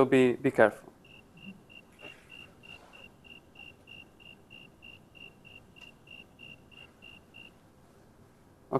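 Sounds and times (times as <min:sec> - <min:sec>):
speech: 0:00.0 - 0:00.9
soft continuous hiss: 0:00.0 - 0:08.7
cricket chirping: 0:01.0 - 0:07.6.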